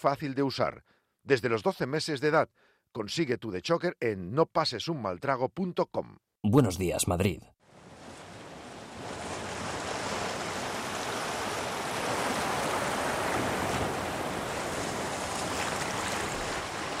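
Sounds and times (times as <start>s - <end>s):
speech: 0.0s - 7.6s
ocean surf and breaking waves: 7.6s - 16.9s.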